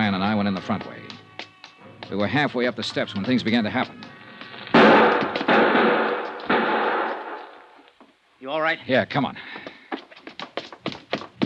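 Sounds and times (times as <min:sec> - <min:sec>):
speech: 0:00.6 - 0:01.2, 0:02.1 - 0:04.0, 0:08.4 - 0:09.6
loud gunshots echoing: 0:04.7 - 0:07.7.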